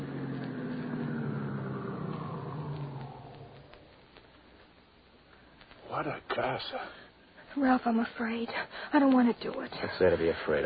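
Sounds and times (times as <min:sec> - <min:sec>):
car engine humming as the car pulls up and stops: 0:00.0 - 0:04.0
speech: 0:05.9 - 0:07.0, 0:07.6 - 0:10.6.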